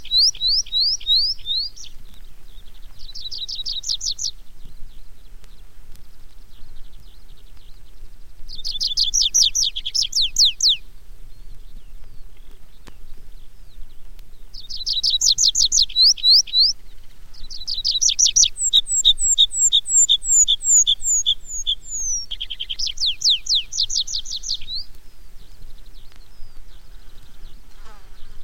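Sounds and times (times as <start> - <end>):
tree pipit singing: 0.0 - 28.4.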